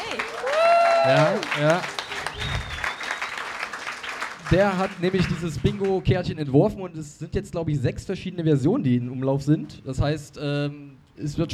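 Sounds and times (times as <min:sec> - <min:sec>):
audience clapping: 0:00.0 - 0:06.3
speech: 0:01.0 - 0:02.6, 0:04.5 - 0:11.5.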